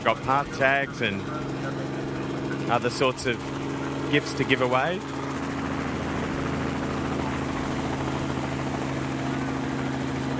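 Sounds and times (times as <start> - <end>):
speech: 0.0 - 1.6, 2.7 - 5.2
helicopter engine and rotors flying off from an event: 0.0 - 10.3.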